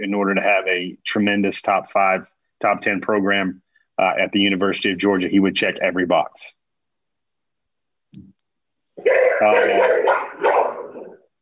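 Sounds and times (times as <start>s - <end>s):
speech: 0.0s - 6.6s, 9.0s - 10.2s
dog barking and yipping: 9.0s - 11.2s.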